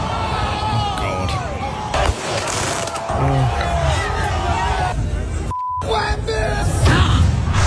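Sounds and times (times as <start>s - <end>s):
dense street crowd cheering and shouting: 0.0s - 7.3s
fireworks crackling and banging during street celebration: 1.9s - 3.1s.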